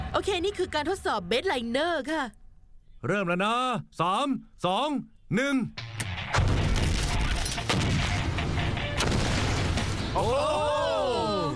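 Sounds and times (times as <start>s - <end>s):
speech: 0.2s - 2.4s, 3.0s - 5.8s, 10.2s - 10.8s
C-4 explosion blasting through wooden wall: 6.4s - 10.4s.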